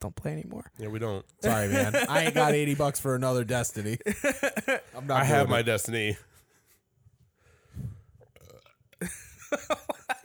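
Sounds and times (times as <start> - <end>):
speech: 0.0 - 6.4, 9.0 - 10.2
laughter: 1.4 - 3.1, 4.0 - 5.7, 9.0 - 10.2
person burping: 8.4 - 9.1.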